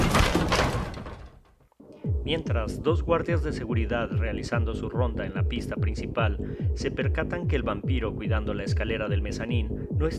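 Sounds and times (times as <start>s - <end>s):
door forced open by a shoulder blow: 0.0s - 1.5s
speech: 2.2s - 10.1s.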